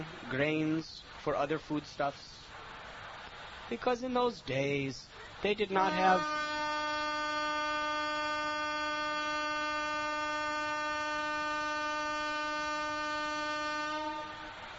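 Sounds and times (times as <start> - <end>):
speech: 0.1 - 2.5, 3.7 - 6.5
loud sustained train horn blaring: 5.8 - 14.7.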